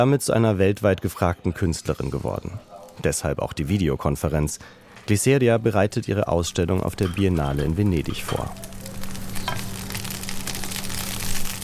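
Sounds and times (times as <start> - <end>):
speech: 0.0 - 8.7
rice with beans frying in a pan: 6.8 - 11.6.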